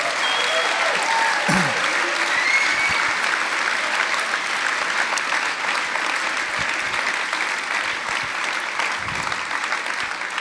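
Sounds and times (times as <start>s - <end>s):
people whooping: 0.0s - 3.4s
crowd applauding: 0.0s - 10.3s.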